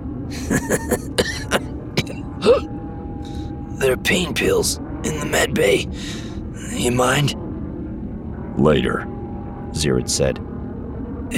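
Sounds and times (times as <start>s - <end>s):
person giving a short breathy chuckle: 0.3s - 2.7s, 5.9s - 6.8s
person coughing roughly: 0.4s - 2.7s
speech: 0.5s - 1.0s, 4.0s - 6.2s, 6.8s - 7.4s, 8.6s - 9.2s, 9.8s - 10.5s.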